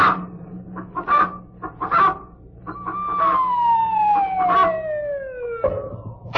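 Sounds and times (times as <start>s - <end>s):
pet hen clucking: 0.0s - 3.6s
long descending whistle-like slide: 2.7s - 6.2s.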